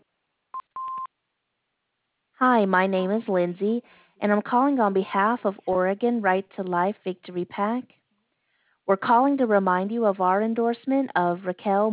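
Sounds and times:
answering machine beeps: 0.6s - 1.1s
speech: 2.4s - 8.0s, 8.9s - 11.9s.

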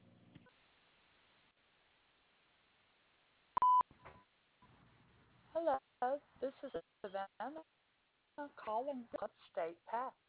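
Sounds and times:
voicemail recording tone beep: 3.6s - 3.8s
speech: 5.6s - 7.8s, 8.4s - 10.2s.

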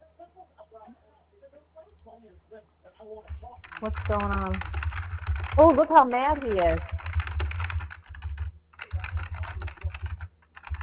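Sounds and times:
speech: 2.5s - 4.8s, 5.6s - 6.9s
rapid typing on a computer keyboard: 3.3s - 10.8s.

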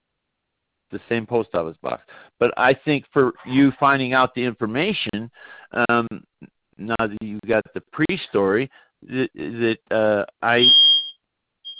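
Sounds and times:
speech: 0.9s - 11.0s
fire alarm going off: 10.6s - 11.7s.

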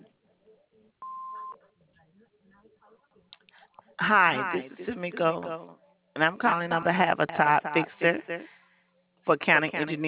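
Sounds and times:
answering machine beep: 1.0s - 1.6s
speech: 4.0s - 8.6s, 9.3s - 10.0s.

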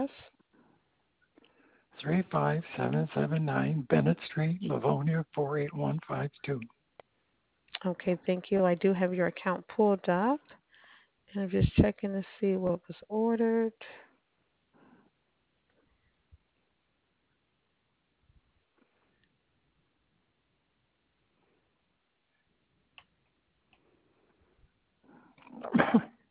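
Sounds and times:
faint breaths: 0.5s - 2.0s, 10.4s - 11.2s, 13.8s - 15.2s, 23.8s - 25.5s
speech: 2.0s - 6.8s, 7.8s - 10.6s, 11.3s - 14.0s
person sneezing: 25.5s - 26.2s.

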